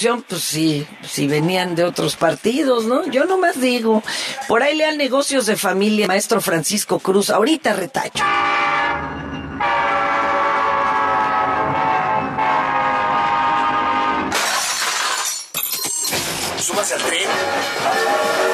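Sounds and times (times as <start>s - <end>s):
speech: 0.0s - 9.0s, 16.8s - 18.5s
rolling rail noise: 0.0s - 14.7s, 16.1s - 18.5s
train horn blaring a sustained multi-toned chord: 8.2s - 14.4s, 17.3s - 18.5s
loud dense clatter with sharp glassy crashes: 14.3s - 17.0s.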